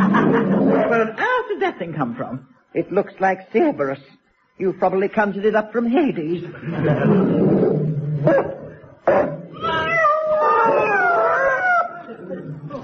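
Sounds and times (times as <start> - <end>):
speech: 1.0 - 9.8
cats yowling and caterwauling: 7.4 - 12.8.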